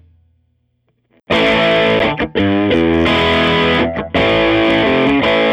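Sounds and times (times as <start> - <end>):
musical riff: 1.4 - 5.4.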